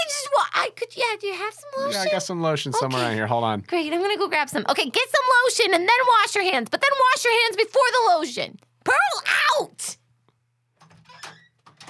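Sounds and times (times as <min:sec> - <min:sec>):
speech: 0:00.7 - 0:10.0
noisy door creaking and rattling open and shut: 0:10.8 - 0:11.8.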